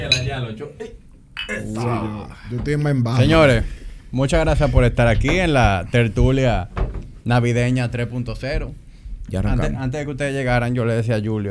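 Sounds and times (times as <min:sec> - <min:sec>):
glasses clinking together in a toast at a Christmas get-together: 0:00.0 - 0:00.4, 0:01.4 - 0:01.7
speech: 0:00.4 - 0:11.5.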